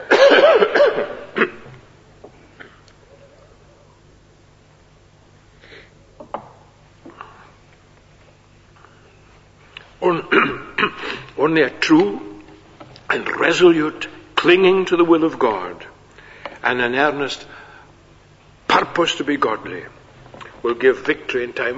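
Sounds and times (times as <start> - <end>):
man coughing off-mic: 0.0 - 1.8, 10.2 - 11.3
speech: 11.5 - 12.3, 13.4 - 15.9, 16.7 - 17.5, 19.0 - 20.0, 20.6 - 21.7.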